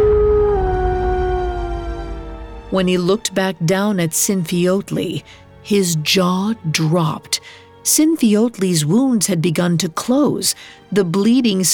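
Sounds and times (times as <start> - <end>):
wolf howling in pain: 0.0 - 2.6
low rumbling background: 0.0 - 7.8
speech: 2.7 - 11.7.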